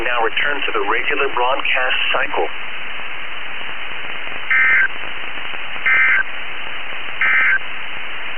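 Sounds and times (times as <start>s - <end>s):
steady hiss of radio static: 0.0s - 8.3s
speech: 0.2s - 2.9s
warbling digital NOAA weather radio EAS emergency alert tones: 4.5s - 4.9s, 5.9s - 6.3s, 7.2s - 7.6s.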